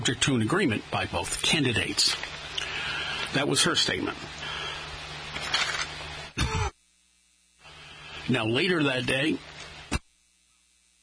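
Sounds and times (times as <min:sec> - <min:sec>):
speech: 0:00.1 - 0:02.4, 0:03.3 - 0:04.4, 0:08.3 - 0:09.5
rough breathy noise: 0:02.6 - 0:03.3, 0:04.4 - 0:05.0
harsh cough or throat-clearing: 0:06.4 - 0:06.8.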